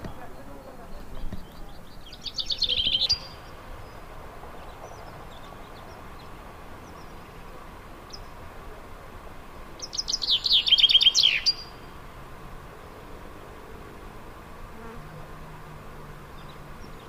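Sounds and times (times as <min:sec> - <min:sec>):
common chaffinch Fringilla coelebs descending song trills: 0:00.0 - 0:12.0.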